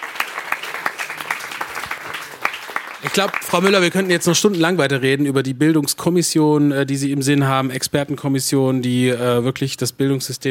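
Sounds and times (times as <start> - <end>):
audience applause for a speaker at a discussion on education: 0.0 - 4.4
speech: 3.1 - 10.4.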